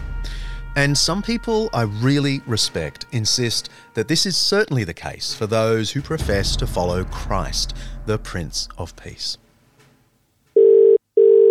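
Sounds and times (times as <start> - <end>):
speech: 0.8 - 9.4
telephone ringing tone as a call is placed: 10.6 - 11.5.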